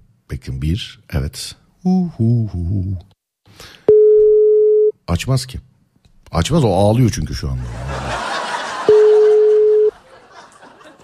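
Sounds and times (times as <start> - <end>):
speech: 0.3 - 3.8, 5.1 - 5.7, 6.3 - 8.0
laughter: 7.6 - 11.0
phone call ringback tone: 8.9 - 9.9.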